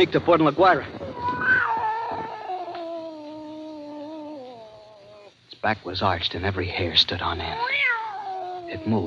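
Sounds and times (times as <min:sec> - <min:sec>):
speech: 0:00.0 - 0:01.0, 0:05.6 - 0:08.0, 0:08.7 - 0:09.0
angry cat yowling: 0:01.0 - 0:05.4, 0:07.4 - 0:09.0.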